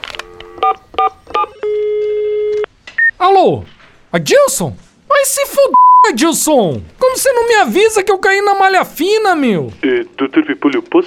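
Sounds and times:
long steady telephone tone: 0.2 - 2.7
telephone keypad tones: 0.2 - 3.1
speech: 3.4 - 11.0.

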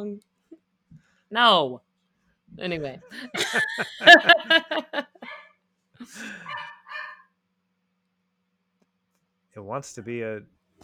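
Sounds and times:
speech: 0.0 - 0.3, 1.3 - 1.8, 2.6 - 5.1, 6.0 - 6.7, 9.6 - 10.8
laughter: 3.1 - 5.4, 6.0 - 7.2
dog barking: 5.2 - 5.6, 6.2 - 7.3.

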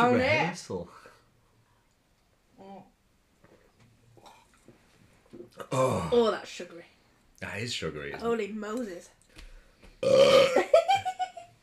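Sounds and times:
speech: 0.0 - 1.0, 5.6 - 9.2, 10.0 - 11.0
burp: 5.4 - 6.3, 10.0 - 10.7.

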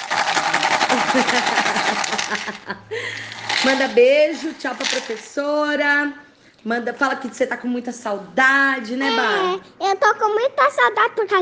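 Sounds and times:
homemade rattle being shaken: 0.0 - 5.5
laughter: 0.5 - 3.4
speech: 1.2 - 1.6, 2.3 - 11.4.

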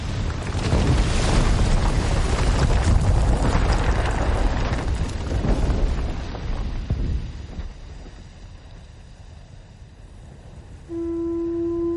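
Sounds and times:
loud rolling explosions: 0.0 - 8.6
steady horn-like tone: 10.9 - 11.9.

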